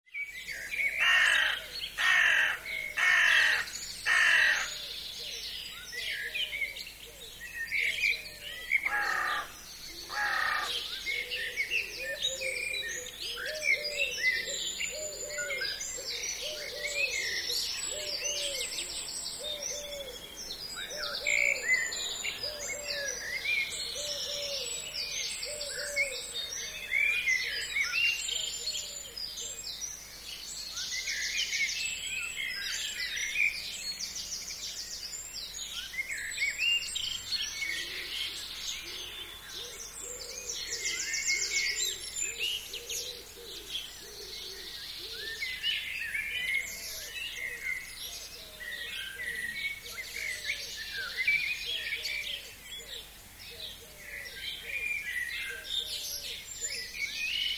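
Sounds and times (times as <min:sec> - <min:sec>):
garden birdsong in the country: 0:00.0 - 0:57.5
crow cawing: 0:01.0 - 0:04.8, 0:08.8 - 0:10.9.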